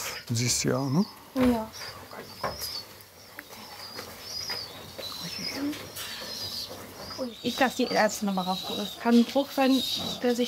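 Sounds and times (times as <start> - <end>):
speech: 0.3 - 2.4, 7.2 - 10.4
small injured bird chirping in thin high peeps: 0.3 - 10.4.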